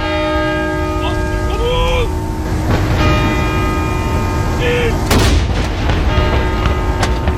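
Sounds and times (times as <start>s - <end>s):
church bells ringing: 0.0s - 7.3s
dense outdoor hum: 0.0s - 7.3s
cannon salute shot booming and echoing: 2.5s - 7.3s.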